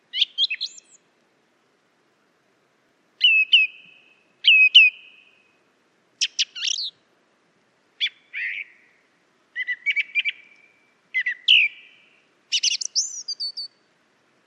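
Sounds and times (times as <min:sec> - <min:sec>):
song thrush singing: 0:00.0 - 0:01.1, 0:03.2 - 0:05.6, 0:06.2 - 0:07.1, 0:08.0 - 0:14.0.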